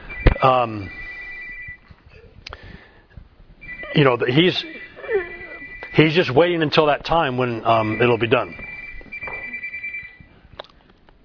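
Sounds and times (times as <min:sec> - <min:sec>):
phone ringing: 0:00.0 - 0:01.9, 0:03.6 - 0:06.5, 0:07.6 - 0:10.3
speech: 0:00.4 - 0:01.0, 0:03.9 - 0:05.2, 0:06.0 - 0:08.6.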